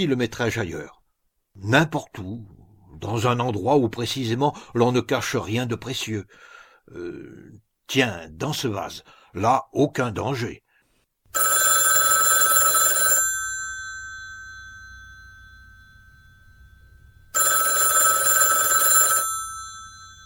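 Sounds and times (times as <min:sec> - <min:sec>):
speech: 0:00.0 - 0:01.0, 0:01.6 - 0:10.6
old-fashioned telephone bell ringing: 0:11.3 - 0:20.2.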